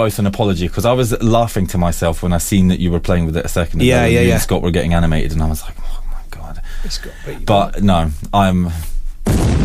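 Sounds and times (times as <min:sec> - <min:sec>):
speech: 0:00.0 - 0:06.0, 0:06.8 - 0:09.4
voiced vocal sounds: 0:03.8 - 0:04.6
loud rumbling explosion sound effect: 0:09.2 - 0:09.6.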